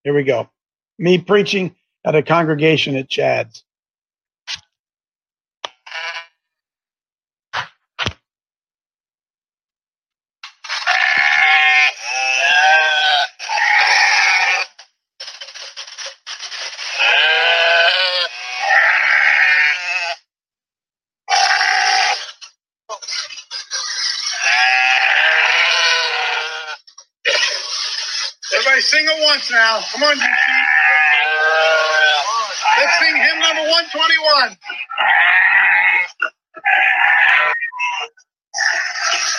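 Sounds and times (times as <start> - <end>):
speech: 0.0 - 3.7, 29.3 - 30.6, 33.9 - 35.0
sheep bleating: 10.8 - 14.8, 16.9 - 20.3, 21.3 - 22.4, 24.3 - 26.9, 28.4 - 39.3.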